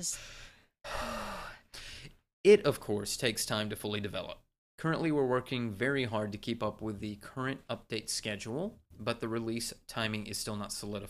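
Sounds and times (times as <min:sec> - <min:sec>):
speech: 0:00.0 - 0:01.1, 0:02.4 - 0:11.0
heavy breathing: 0:00.0 - 0:02.2.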